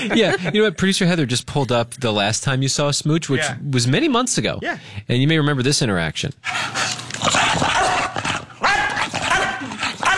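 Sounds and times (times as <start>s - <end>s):
speech: 0.0s - 7.0s
dog barking hoarsely with whimpery yips: 7.3s - 10.1s.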